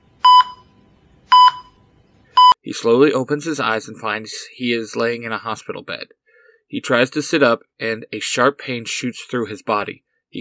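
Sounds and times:
short bright electronic beeps: 0:00.2 - 0:00.7, 0:01.3 - 0:01.8
speech: 0:02.6 - 0:10.3.

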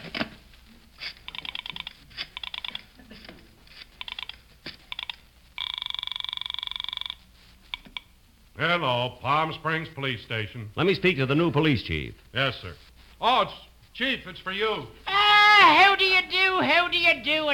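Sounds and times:
sustained telephone buzzing tone: 0:01.3 - 0:02.9, 0:04.0 - 0:08.1
telephone key tones while dialing: 0:04.0 - 0:08.1
speech: 0:08.6 - 0:15.0, 0:15.6 - 0:17.5.

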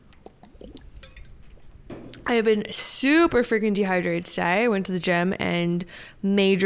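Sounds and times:
gulping water from a bottle: 0:00.0 - 0:01.7
speech: 0:02.3 - 0:06.6.

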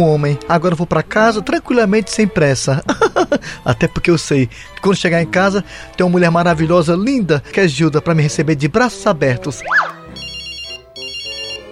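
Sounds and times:
speech: 0:00.0 - 0:10.0
laughter: 0:02.8 - 0:03.5
whimper-like sound: 0:09.6 - 0:10.0
mobile phone ringtone with bright repeating electronic tones: 0:09.8 - 0:11.6.

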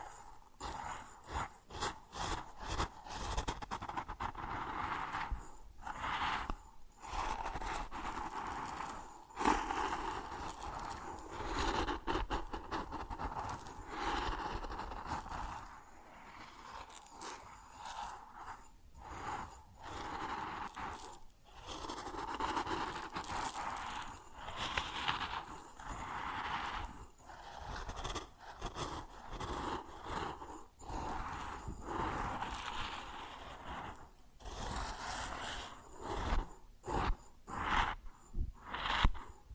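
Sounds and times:
grain kernels shifting and rubbing: 0:00.0 - 0:39.4.

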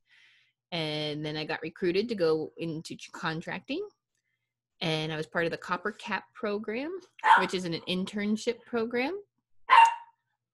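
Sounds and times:
speech: 0:01.2 - 0:04.0, 0:04.8 - 0:09.2
dog barking while playing at home: 0:07.2 - 0:07.5, 0:09.7 - 0:10.2.

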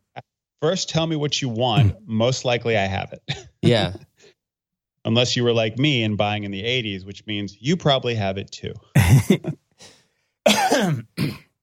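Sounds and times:
speech: 0:00.6 - 0:04.1, 0:05.0 - 0:10.0
person coughing: 0:09.0 - 0:09.6, 0:10.5 - 0:11.6.

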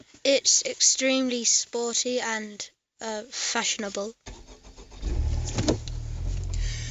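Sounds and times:
speech: 0:00.2 - 0:04.4
sports car turbocharged VTEC engine starting and idling: 0:04.2 - 0:06.8.

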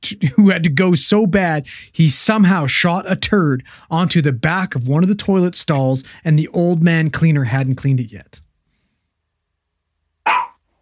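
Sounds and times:
speech: 0:00.0 - 0:08.4
dog barking: 0:10.3 - 0:10.8.

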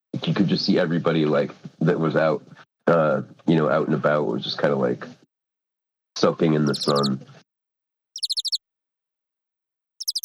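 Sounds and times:
speech: 0:00.2 - 0:05.2, 0:06.2 - 0:07.4
birds chirping with high rapid notes: 0:06.5 - 0:07.2, 0:08.2 - 0:08.6, 0:10.0 - 0:10.2.

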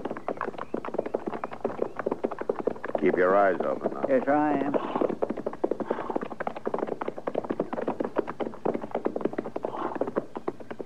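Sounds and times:
horses' hooves clip-clopping at a brisk walking pace: 0:00.0 - 0:10.8
speech: 0:03.0 - 0:05.1.

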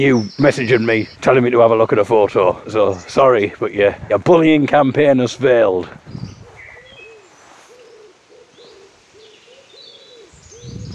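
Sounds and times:
faint chirps from other birds: 0:00.0 - 0:01.2, 0:06.1 - 0:10.9
speech: 0:00.0 - 0:06.2
pigeon cooing: 0:06.2 - 0:10.9.

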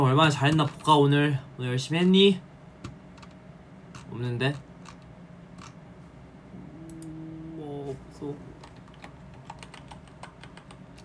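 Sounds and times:
speech: 0:00.0 - 0:02.5, 0:04.1 - 0:04.7, 0:08.2 - 0:08.5
low hum: 0:00.0 - 0:11.0
rapid typing on a computer keyboard: 0:02.8 - 0:05.8, 0:08.6 - 0:11.0.

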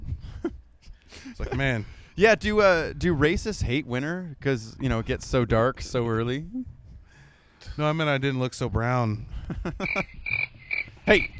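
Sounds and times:
speech: 0:01.2 - 0:06.7, 0:07.6 - 0:10.2, 0:11.1 - 0:11.3
crickets chirping: 0:09.7 - 0:11.3.

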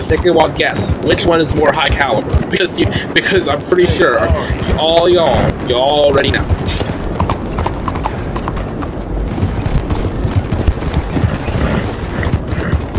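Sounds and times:
speech: 0:00.0 - 0:07.0
dense rumbling background in a video game: 0:00.0 - 0:12.9
horse hooves trotting along railway tracks in a video game: 0:00.0 - 0:12.9.

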